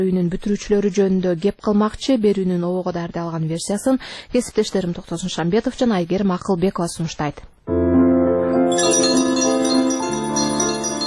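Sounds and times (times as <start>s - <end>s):
speech: 0.0s - 7.8s, 8.7s - 9.2s
school last bell ringing for the end of the school year: 8.7s - 11.0s.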